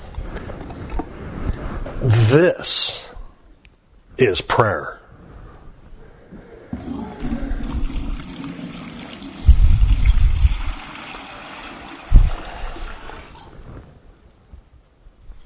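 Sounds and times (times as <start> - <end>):
speech: 2.3 - 3.0, 4.2 - 5.0
water poured into a container, gurgling and splashing: 6.7 - 13.5.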